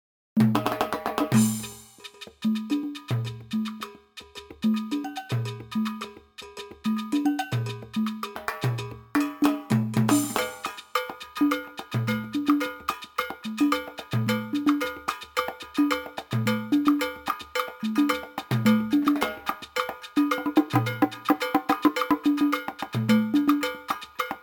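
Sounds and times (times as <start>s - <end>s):
world percussion: 0.4s - 24.4s.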